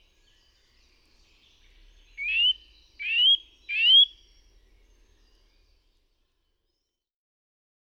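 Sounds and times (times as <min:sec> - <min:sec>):
Eurasian nuthatch rising whistled calls in forest: 0:02.2 - 0:04.3.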